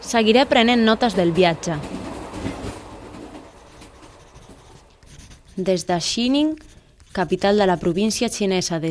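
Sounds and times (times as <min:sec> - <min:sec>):
speech: 0:00.1 - 0:02.0, 0:05.6 - 0:08.8
passenger train from Xining to Golmud rumbling along rails at under 100 km per hour: 0:00.2 - 0:03.9.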